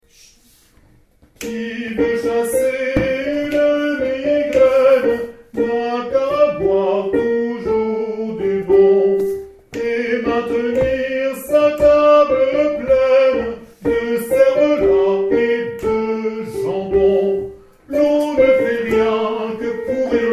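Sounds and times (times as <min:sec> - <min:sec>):
sopranos singing a drinking song: 0:01.4 - 0:20.3.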